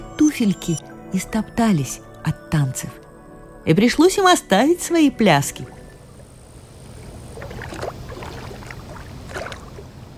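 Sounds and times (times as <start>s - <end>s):
speech: 0.3s - 3.0s, 3.6s - 5.8s
oars of a rowing boat dipping and splashing crossing a river: 5.7s - 10.1s
steady low watery wash under a rowing boat on a river: 5.7s - 10.1s.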